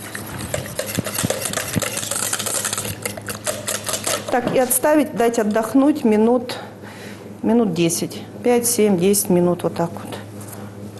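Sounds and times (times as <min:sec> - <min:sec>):
utensil clinking against the sides of a bowl: 0:00.0 - 0:04.8
stirring pancake batter briskly in a bowl: 0:00.0 - 0:05.9
speech: 0:04.4 - 0:06.7, 0:07.4 - 0:10.2.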